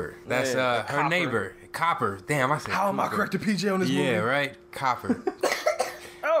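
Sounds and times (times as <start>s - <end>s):
speech: 0.0s - 5.5s
person coughing: 5.4s - 6.2s.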